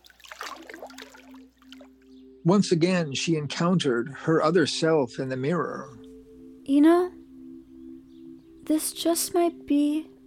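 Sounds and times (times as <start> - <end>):
running water splashing and spattering from a tap: 0.0 - 1.8
speech: 2.4 - 6.0, 6.7 - 7.2, 8.7 - 10.1.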